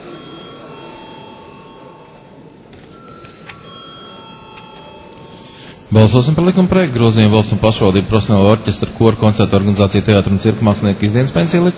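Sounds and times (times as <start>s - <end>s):
bell in a parliament ringing to call members to a vote: 0.0s - 5.9s
faint noise: 0.0s - 11.7s
speech: 5.9s - 11.7s.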